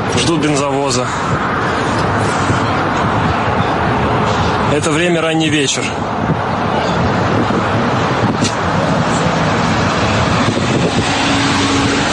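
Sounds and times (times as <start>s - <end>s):
cars idling and creeping: 0.0s - 12.1s
speech: 0.2s - 3.2s, 4.7s - 6.3s.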